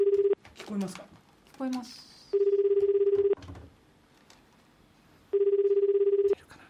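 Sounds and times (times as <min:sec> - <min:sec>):
ringback tone of an outgoing telephone call in Japan: 0:00.0 - 0:00.4, 0:02.4 - 0:03.4, 0:05.3 - 0:06.4
speech: 0:00.7 - 0:02.1.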